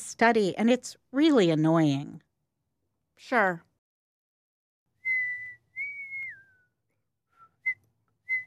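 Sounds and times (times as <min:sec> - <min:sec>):
speech: 0:00.2 - 0:02.3, 0:03.2 - 0:03.7
person whistling a short tune: 0:05.0 - 0:08.4.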